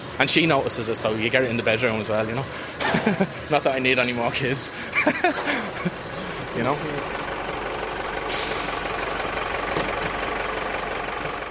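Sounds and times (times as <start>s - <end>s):
school bus diesel engines idling: 0.0s - 11.5s
speech: 0.2s - 5.8s, 6.6s - 7.2s
laughter: 2.7s - 3.6s, 4.2s - 7.1s
hiss of air release: 8.3s - 9.0s.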